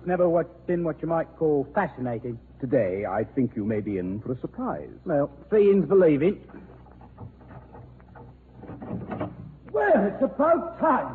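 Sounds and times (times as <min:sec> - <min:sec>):
speech: 0:00.0 - 0:07.3, 0:08.9 - 0:11.1
small metallic rattles and wooden clicks of a door lock: 0:06.4 - 0:09.8
louder scraping knock of a door: 0:06.6 - 0:09.7.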